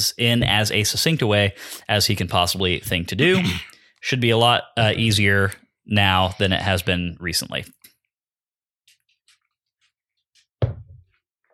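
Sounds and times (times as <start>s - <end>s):
speech: 0.0s - 7.8s
mouth sounds from sipping whiskey: 3.3s - 3.8s.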